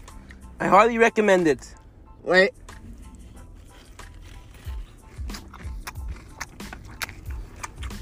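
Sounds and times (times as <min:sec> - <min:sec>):
speech: 0:00.6 - 0:02.6
person biting into crisp hot food: 0:02.7 - 0:08.0.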